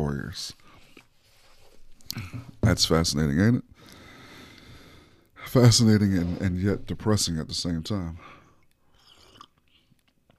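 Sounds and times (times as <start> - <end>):
speech: 0.2 - 0.6, 2.1 - 4.0, 5.5 - 8.4
slurping sip of a hot coffee: 5.9 - 6.9, 8.9 - 10.0.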